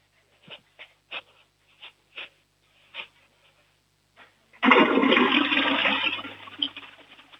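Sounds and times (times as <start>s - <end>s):
toilet flushing: 4.6s - 7.3s.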